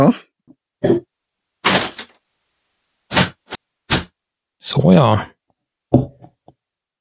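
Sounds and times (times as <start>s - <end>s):
speech: 0.0s - 1.1s, 4.6s - 5.3s
window being closed: 1.6s - 2.1s, 3.1s - 4.1s.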